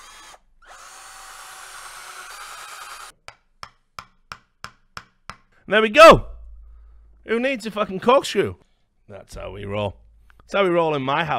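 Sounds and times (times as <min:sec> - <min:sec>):
power drill whirring: 0:00.0 - 0:03.2
speech: 0:05.7 - 0:06.3, 0:07.3 - 0:11.3.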